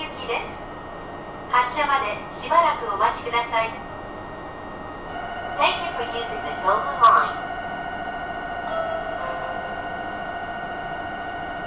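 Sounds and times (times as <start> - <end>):
spoken announcements inside a local train: 0.0 - 0.6, 1.5 - 3.8, 5.6 - 7.5
low rumble inside a local train on a single-track line: 0.0 - 11.6
steady whining train motor tone: 5.1 - 5.7, 7.4 - 11.6.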